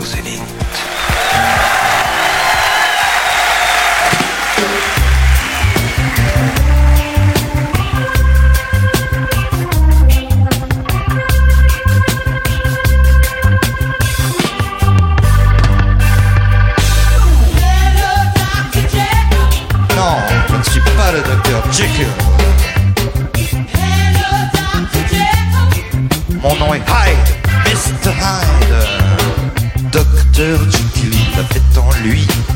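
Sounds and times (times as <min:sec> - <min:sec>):
audience cheering and applause: 0:00.4 - 0:09.0
live reggae band playing a bass-heavy groove with a vocal line: 0:04.5 - 0:32.5.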